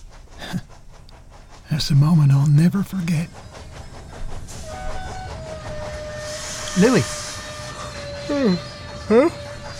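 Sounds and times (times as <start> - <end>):
moving train rumbling: 0.0 - 9.7
speech: 1.7 - 3.5, 6.8 - 7.2, 8.3 - 9.4
thin sustained high squeal of a moving train: 4.5 - 9.7.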